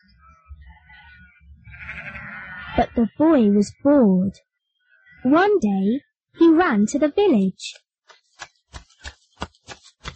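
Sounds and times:
sheep bleating: 0:00.8 - 0:02.8
speech: 0:02.8 - 0:04.5, 0:05.2 - 0:07.8.

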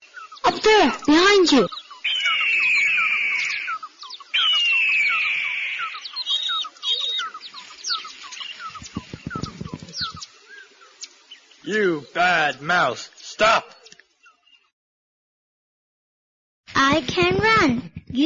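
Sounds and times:
speech: 0:00.5 - 0:01.8, 0:11.7 - 0:13.7, 0:17.0 - 0:18.2
eagle screeching: 0:00.8 - 0:07.4
shorter squeaky cries: 0:02.1 - 0:03.8, 0:04.4 - 0:06.0
low thumps: 0:08.7 - 0:10.2.

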